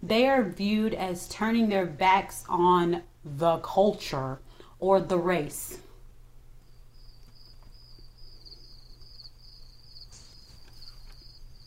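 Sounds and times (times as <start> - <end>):
low constant hum: 0.0 - 11.6
speech: 0.1 - 5.8
crickets chirping: 6.6 - 11.6.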